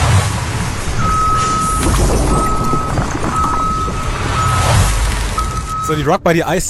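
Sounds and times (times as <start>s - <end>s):
heavy tow truck idling at a towing service yard: 0.0s - 6.2s
high reversing beep: 1.0s - 6.1s
speech: 5.9s - 6.6s.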